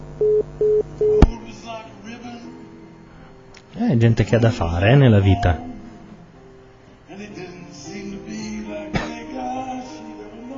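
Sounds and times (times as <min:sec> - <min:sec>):
short telephone tones of a call to a mobile phone: 0:00.2 - 0:01.3
sharp click as the phone line picks up: 0:00.2 - 0:01.4
speech: 0:03.8 - 0:05.7.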